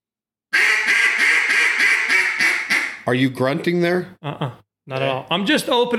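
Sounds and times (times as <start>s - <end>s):
raspy duck quacks blown on a reed duck call: 0.5s - 3.0s
speech: 3.1s - 5.9s.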